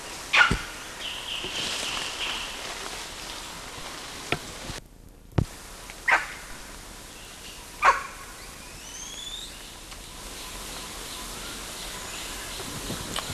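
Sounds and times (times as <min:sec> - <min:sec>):
hiss: 0:00.0 - 0:13.3
animal barking: 0:00.3 - 0:00.8, 0:06.0 - 0:06.5, 0:07.8 - 0:08.3.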